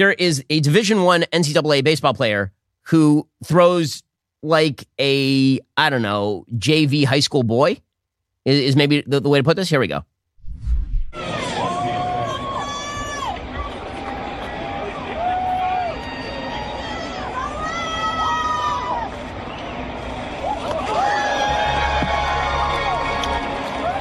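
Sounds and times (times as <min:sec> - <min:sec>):
speech: 0:00.0 - 0:07.8, 0:08.4 - 0:11.4
large stadium crowd roaring and cheering: 0:11.2 - 0:23.9.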